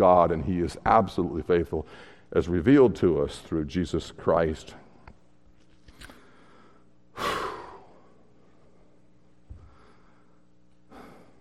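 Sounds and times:
speech: 0.0s - 4.8s
person breathing hard and catching their breath: 6.1s - 8.3s, 9.5s - 11.4s.

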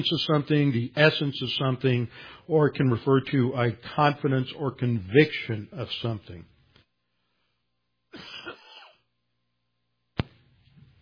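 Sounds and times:
speech: 0.0s - 6.5s
person giving a sharp abrupt cough: 8.1s - 9.1s
person clearing throat roughly: 8.2s - 9.1s.

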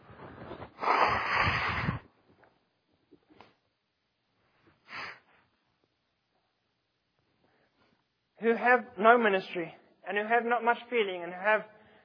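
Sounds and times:
person blowing their nose: 0.3s - 2.1s, 4.8s - 5.3s
speech: 8.4s - 11.8s.

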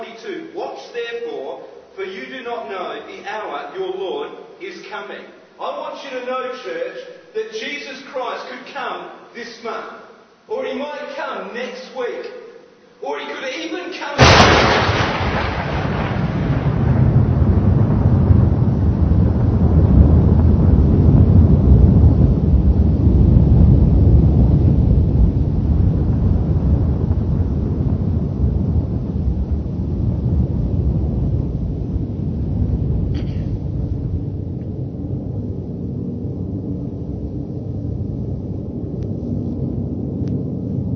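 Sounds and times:
speech: 2.1s - 12.4s, 13.0s - 15.6s
lightning crack: 14.1s - 40.9s
deep heavy thunder rumbling: 14.2s - 40.9s.

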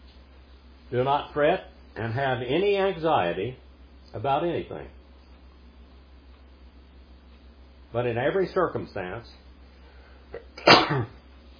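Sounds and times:
speech: 0.9s - 5.0s, 7.9s - 9.4s, 10.3s - 11.2s
person sneezing: 10.3s - 11.2s.

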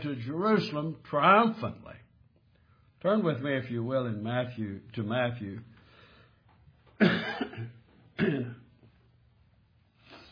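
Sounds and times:
speech: 0.0s - 2.0s, 3.0s - 5.7s, 7.0s - 8.6s
coughing: 6.9s - 8.8s.

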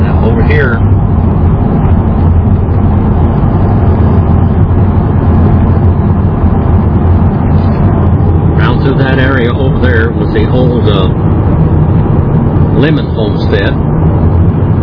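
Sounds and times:
delivery truck driving down a road in a wilderness area: 0.0s - 14.8s.

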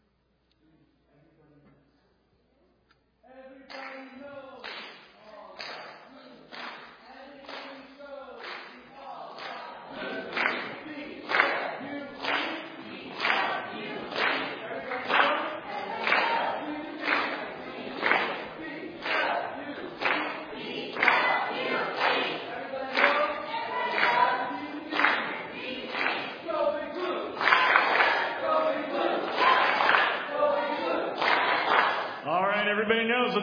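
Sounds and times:
team chanting a cheer: 3.4s - 32.6s
rhythmic clapping: 3.6s - 33.4s
people shouting: 27.1s - 32.1s.

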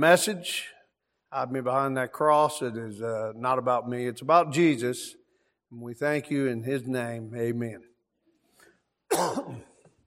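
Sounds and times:
speech: 0.0s - 7.9s, 9.1s - 9.7s
person coughing a throaty rasping cough: 9.1s - 9.9s.

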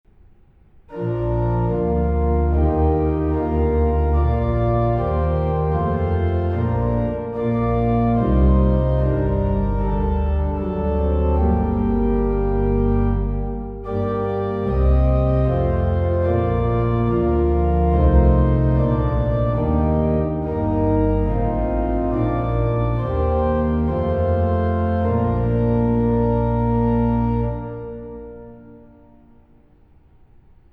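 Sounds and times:
organ playing hymns: 0.9s - 29.5s.

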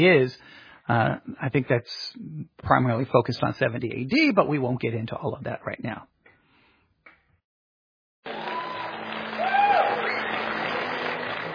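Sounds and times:
speech: 0.0s - 6.1s
crowd applauding: 8.2s - 11.5s.

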